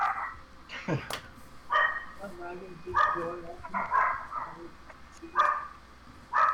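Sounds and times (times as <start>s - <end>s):
small dog barking in high-pitched yaps: 0.0s - 0.4s, 1.7s - 2.2s, 2.9s - 4.7s, 5.3s - 6.5s.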